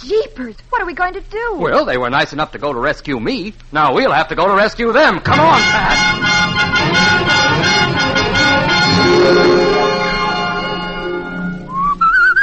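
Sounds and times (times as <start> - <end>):
speech: 0.0 - 7.3, 9.0 - 9.8
full sustained musical backing: 5.2 - 12.4
person whistling a tune: 11.6 - 12.4.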